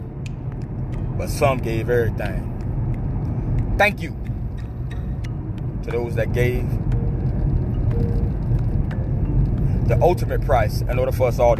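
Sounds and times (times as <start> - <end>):
car being driven, road and engine rumble: 0.0 - 11.5
speech: 1.2 - 2.6, 3.8 - 4.2, 5.8 - 6.8, 9.9 - 11.5.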